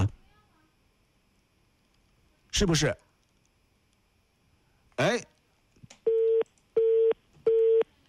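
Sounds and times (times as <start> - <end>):
speech: 2.6 - 3.1, 5.0 - 5.3
telephone busy tone after a call cuts off: 6.1 - 8.0.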